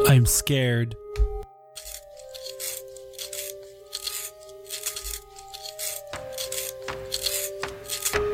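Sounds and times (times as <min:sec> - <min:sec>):
speech: 0:00.1 - 0:01.3
pencil being sharpened with gritty grinding over a whirring tone: 0:01.8 - 0:08.1.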